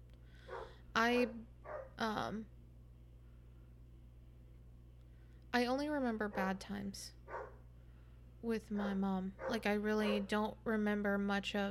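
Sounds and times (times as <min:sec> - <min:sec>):
low steady hum: 0:00.0 - 0:11.6
dogs barking at night: 0:00.4 - 0:02.0, 0:06.2 - 0:07.6, 0:08.7 - 0:10.4
speech: 0:01.0 - 0:02.6, 0:05.5 - 0:07.2, 0:08.4 - 0:11.6.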